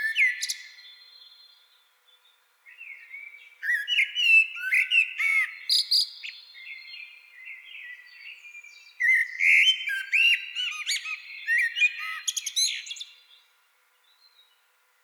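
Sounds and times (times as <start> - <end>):
common blackbird Turdus merula singing: 0.0 - 1.7, 2.7 - 14.6.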